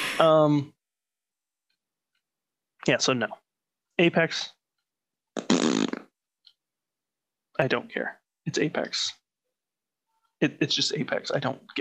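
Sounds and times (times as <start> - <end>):
speech: 0.2 - 0.8, 2.8 - 3.4, 4.0 - 4.6, 7.6 - 9.2, 10.4 - 11.7
fart noise: 5.4 - 6.2.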